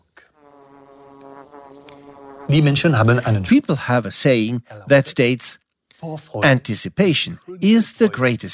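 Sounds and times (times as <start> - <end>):
bees buzzing in a hollow tree: 0.4 - 3.4
speech: 2.5 - 8.5.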